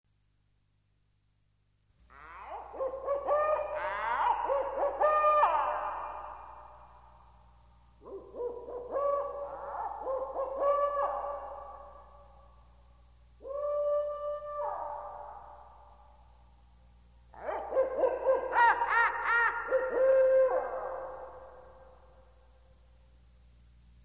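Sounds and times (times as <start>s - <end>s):
jungle bird calling: 2.1s - 7.2s, 8.0s - 12.6s, 13.4s - 15.9s, 17.4s - 22.0s.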